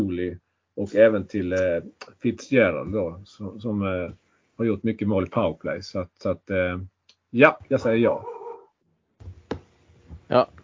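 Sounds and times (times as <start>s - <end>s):
speech: 0.2s - 8.3s, 10.3s - 10.6s
dog barking: 8.0s - 8.7s.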